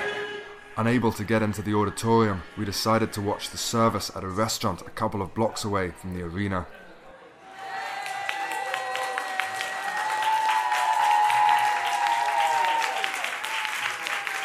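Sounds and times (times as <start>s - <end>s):
speech: 0.8s - 6.8s
crowd cheering and clapping at an arrival: 7.4s - 14.4s.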